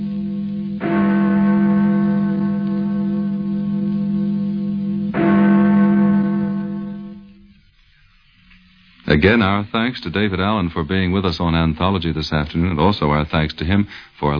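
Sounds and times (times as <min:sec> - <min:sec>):
church bell tolling: 0:00.0 - 0:07.5
speech: 0:09.2 - 0:14.3.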